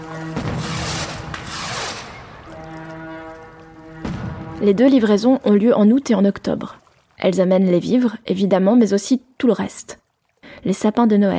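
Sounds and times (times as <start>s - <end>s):
fireworks bursting in booming cracks: 0.0s - 2.7s, 4.0s - 4.7s
crackling flurry of fireworks: 0.0s - 4.9s
deep ship's horn droning: 0.0s - 5.4s
speech: 4.6s - 10.0s, 10.6s - 11.3s.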